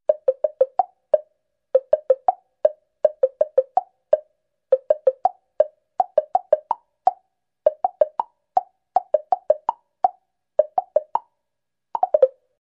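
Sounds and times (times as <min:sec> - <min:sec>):
extended dull woodblock melody: 0:00.1 - 0:11.3, 0:12.0 - 0:12.5.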